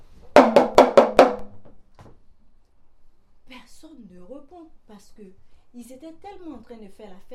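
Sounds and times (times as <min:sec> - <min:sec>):
knocking on a house door: 0:00.3 - 0:01.8
speech: 0:03.8 - 0:07.3.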